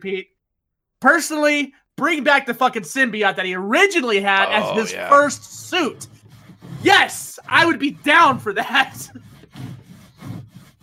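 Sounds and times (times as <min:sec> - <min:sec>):
speech: 0:00.0 - 0:00.4, 0:01.0 - 0:06.2, 0:06.8 - 0:09.7
rough back-and-forth sawing on wood: 0:04.3 - 0:10.8.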